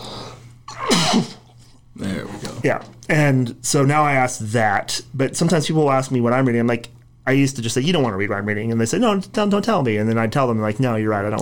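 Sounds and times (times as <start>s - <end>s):
faint steady hum: 0.0s - 11.3s
sneeze: 0.7s - 1.5s
speech: 1.1s - 1.4s, 2.0s - 11.3s.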